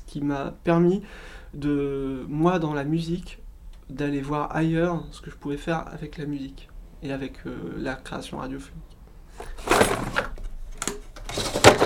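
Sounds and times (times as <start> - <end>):
speech: 0.1 - 10.0
drawer sliding open with rough scraping: 9.4 - 11.8.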